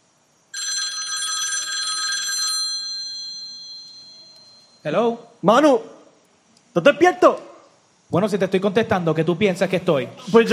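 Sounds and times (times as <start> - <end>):
telephone ringing with a trilling electric bell: 0.5 - 4.8
speech: 4.8 - 5.9, 6.8 - 7.5, 8.1 - 10.5.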